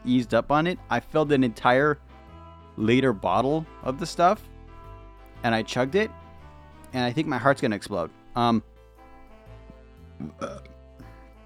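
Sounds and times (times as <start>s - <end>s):
speech: 0.0s - 2.0s, 2.8s - 4.5s, 5.4s - 6.2s, 6.9s - 8.7s, 10.2s - 10.7s
low throaty burp: 10.2s - 11.2s.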